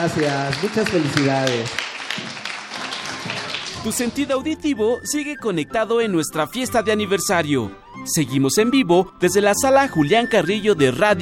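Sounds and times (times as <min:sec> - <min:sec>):
speech: 0:00.0 - 0:02.3, 0:03.8 - 0:11.1
audience applause: 0:00.0 - 0:04.0.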